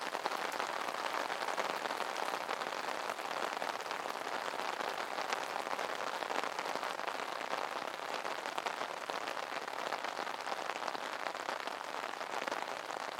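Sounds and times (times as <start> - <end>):
rain pattering on an umbrella: 0.0 - 13.1.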